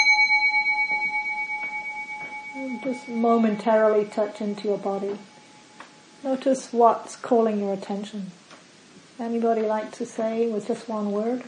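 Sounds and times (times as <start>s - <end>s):
mindfulness bell struck to begin a pause: 0.0s - 5.8s
speech: 2.8s - 5.3s, 6.2s - 8.4s, 9.2s - 11.4s.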